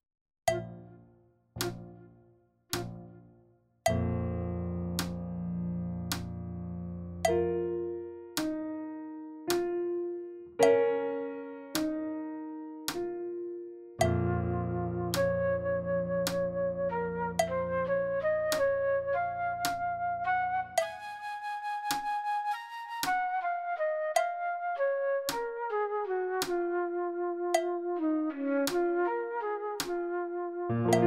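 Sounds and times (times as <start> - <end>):
piano in practice playback: 0.5 - 31.0
flute in practice playback: 14.0 - 31.0.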